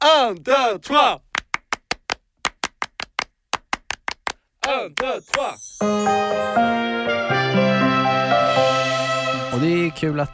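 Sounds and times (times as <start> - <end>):
speech: 0.2 - 1.2, 4.7 - 8.8, 9.6 - 10.3
rhythmic hand clapping: 1.2 - 5.6.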